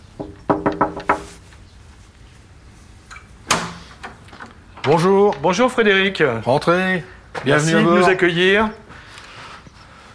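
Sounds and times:
speech: 0:00.2 - 0:01.1, 0:04.9 - 0:08.8
firm knocks on a wooden front door of a house in Lesconil: 0:00.2 - 0:01.2.

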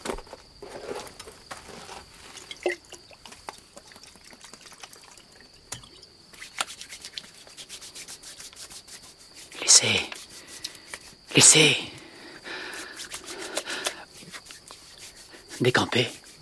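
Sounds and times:
vigorous rubbing of legs with alcohol: 0:06.4 - 0:11.2, 0:12.8 - 0:16.4
moist touches: 0:06.4 - 0:12.0, 0:12.6 - 0:16.4
speech: 0:09.8 - 0:10.1, 0:11.4 - 0:11.9, 0:15.6 - 0:16.2.

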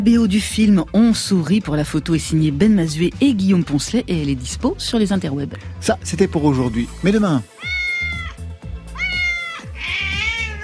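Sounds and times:
speech: 0:00.0 - 0:07.7
cat meowing loudly: 0:07.4 - 0:10.6.

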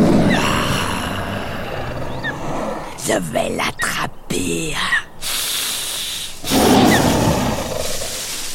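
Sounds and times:
sabre-toothed tiger roaring while hunting: 0:00.0 - 0:03.0, 0:06.4 - 0:08.2
speech: 0:03.1 - 0:05.0.

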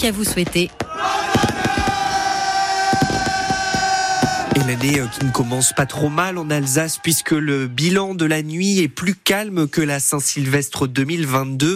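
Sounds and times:
speech: 0:00.0 - 0:01.5, 0:04.6 - 0:11.7
New Year's fireworks crackling and popping over a town square in Alsace: 0:00.0 - 0:05.6
large crowd shouting and cheering joyfully: 0:00.7 - 0:08.3.

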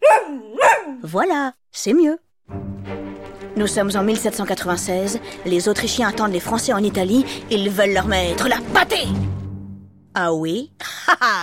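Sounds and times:
dog barking with sharp yelps and a brief whine: 0:00.0 - 0:01.0
speech: 0:01.0 - 0:03.0, 0:03.6 - 0:09.4, 0:10.2 - 0:11.4
laughter: 0:10.8 - 0:11.4.

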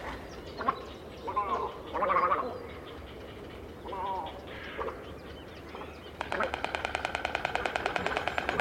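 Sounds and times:
outdoor noise: 0:00.0 - 0:08.6
bird bill clattering defending its nest against a rival pair: 0:06.2 - 0:08.6.

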